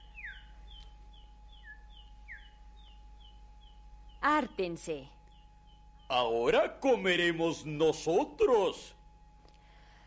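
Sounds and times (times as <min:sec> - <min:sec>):
small chick peeping while being given rice to eat: 0:00.0 - 0:06.3
low steady hum: 0:00.0 - 0:10.0
speech: 0:04.2 - 0:05.2, 0:06.1 - 0:09.0.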